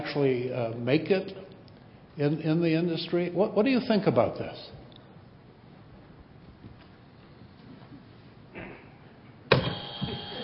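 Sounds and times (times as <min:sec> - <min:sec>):
faint noise: 0:00.0 - 0:10.4
speech: 0:00.1 - 0:01.5, 0:02.2 - 0:04.8
loud electronic buzzer drone: 0:09.5 - 0:10.4.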